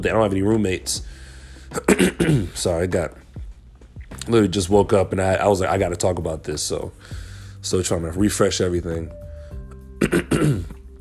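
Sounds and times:
speech: 0:00.0 - 0:03.2, 0:04.2 - 0:09.2, 0:10.0 - 0:10.8
raspy throat clearing: 0:01.8 - 0:02.6, 0:10.0 - 0:10.8.

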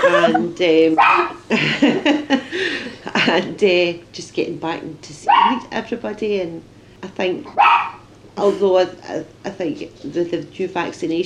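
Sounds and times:
laughter: 0:00.0 - 0:00.6, 0:01.4 - 0:03.6
speech: 0:00.0 - 0:11.2
dog barking in yelping bursts: 0:01.0 - 0:01.4, 0:05.3 - 0:05.6, 0:07.5 - 0:08.0.

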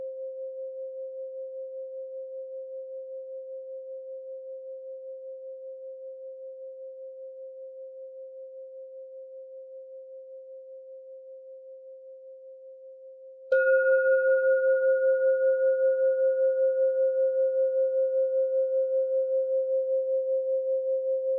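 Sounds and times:
singing bowl ringing with a steady mid-pitched tone: 0:13.5 - 0:21.2.

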